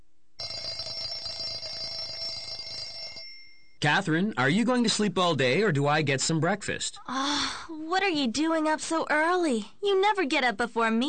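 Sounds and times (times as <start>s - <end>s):
alarm clock ringing: 0.4s - 3.8s
speech: 3.8s - 11.0s.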